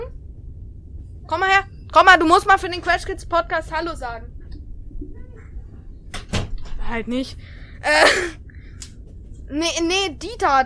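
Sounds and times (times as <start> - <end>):
low rumble: 0.0 - 10.6
speech: 1.3 - 4.4, 6.9 - 8.4, 9.5 - 10.6
door swinging shut: 5.0 - 6.9.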